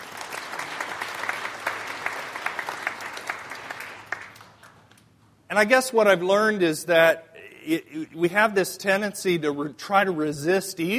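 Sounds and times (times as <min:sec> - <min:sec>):
room full of people applauding: 0:00.0 - 0:04.9
speech: 0:05.5 - 0:10.9.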